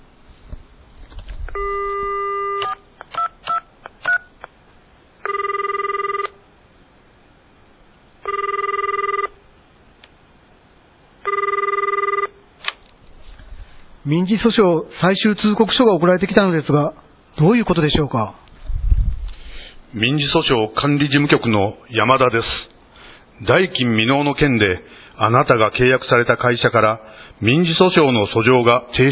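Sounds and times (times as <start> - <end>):
telephone dial tone: 1.5 - 4.2, 5.2 - 6.4, 8.2 - 9.4, 11.2 - 12.4
telephone keypad beeps: 1.5 - 4.3
speech: 14.1 - 18.4, 19.9 - 22.6, 23.4 - 29.1.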